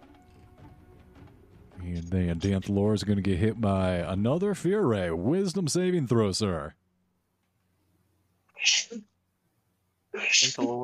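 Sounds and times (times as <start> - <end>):
speech: 2.0 - 6.8, 10.4 - 10.8
sharp fairly loud sneeze: 8.6 - 9.0.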